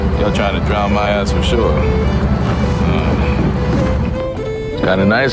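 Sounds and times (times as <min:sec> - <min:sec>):
speech: 0:00.2 - 0:02.4, 0:04.8 - 0:05.3
water sloshing and lapping against a boat hull: 0:01.3 - 0:05.0.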